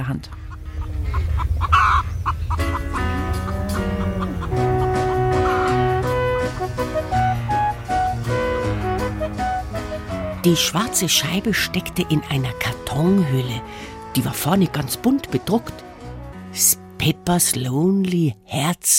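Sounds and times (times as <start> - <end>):
speech: 0.0 - 0.4, 10.4 - 15.8, 16.6 - 18.9
hens clucking in a henhouse: 0.0 - 7.2
full bright band recording: 2.7 - 10.4.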